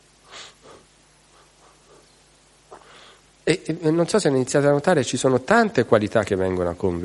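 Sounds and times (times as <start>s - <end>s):
soft airy deliberate breathing for meditation: 0.2s - 3.4s
speech: 3.5s - 7.0s.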